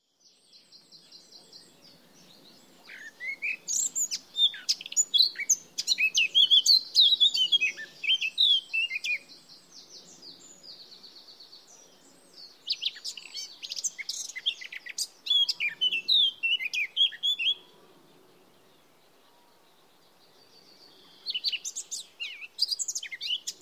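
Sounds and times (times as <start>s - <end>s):
Eurasian blackcap Sylvia atricapilla: 0.3s - 17.6s, 20.6s - 23.6s.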